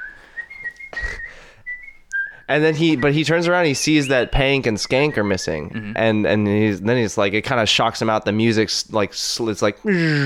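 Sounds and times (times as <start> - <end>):
person skipping along whistling a bright cheerful tune: 0.0 - 3.1
speech: 2.5 - 10.2.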